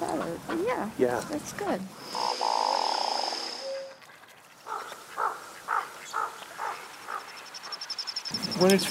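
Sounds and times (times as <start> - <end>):
speech: 0.2 - 2.6, 8.6 - 8.9
courting duck's frog-like throat call: 2.1 - 7.2.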